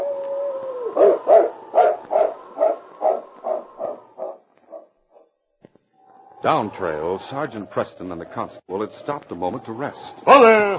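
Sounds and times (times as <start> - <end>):
dog howling: 0.0 - 4.9, 6.0 - 8.2, 9.4 - 10.7
dog yelping barks: 1.0 - 5.3
speech: 6.4 - 10.7.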